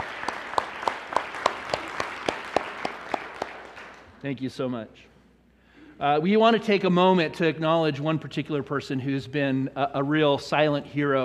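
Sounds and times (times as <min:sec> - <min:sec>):
one pair of hands clapping in a steady rhythm: 0:00.0 - 0:04.1
speech: 0:04.2 - 0:05.1, 0:06.0 - 0:11.2.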